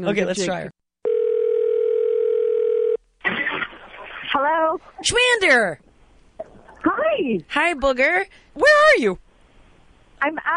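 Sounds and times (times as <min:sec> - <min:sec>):
speech: 0:00.0 - 0:00.8, 0:04.4 - 0:05.9, 0:06.8 - 0:09.2, 0:10.2 - 0:10.5
telephone dial tone of an outgoing call: 0:01.0 - 0:03.0
noisy crackle: 0:03.2 - 0:05.2.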